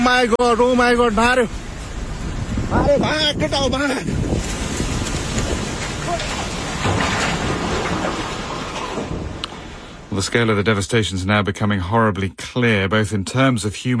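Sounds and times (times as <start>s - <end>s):
speech: 0.0s - 1.6s, 2.7s - 4.5s, 6.1s - 6.4s, 10.2s - 13.9s
flood water and debris rushing downhill: 0.0s - 10.5s.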